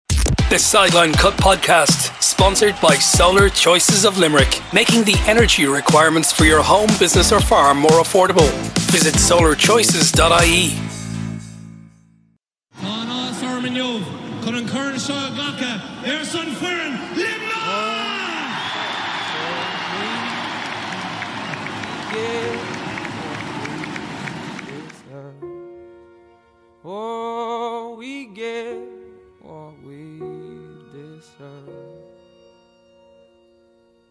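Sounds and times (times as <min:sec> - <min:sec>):
large stadium crowd roaring and cheering at hurling match: 0:00.5 - 0:10.2, 0:12.8 - 0:25.1
speech: 0:00.5 - 0:11.0.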